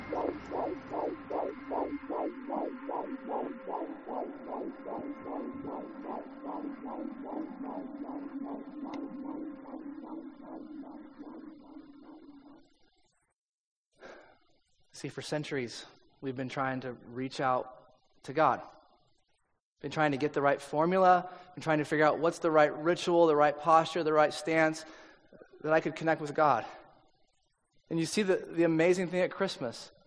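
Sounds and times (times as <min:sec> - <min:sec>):
low droning hum: 0:00.0 - 0:12.6
heartbeat-like throbbing: 0:00.0 - 0:12.8
speech: 0:04.2 - 0:12.7, 0:15.0 - 0:18.8, 0:19.8 - 0:25.0, 0:25.6 - 0:26.8, 0:27.9 - 0:30.0.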